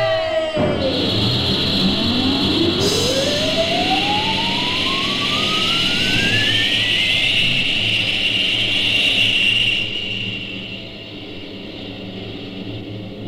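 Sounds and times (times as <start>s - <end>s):
whistling tone sweeping upward in pitch: 0.0s - 11.4s
rocket ship launching with a loud steady roar: 0.2s - 8.2s.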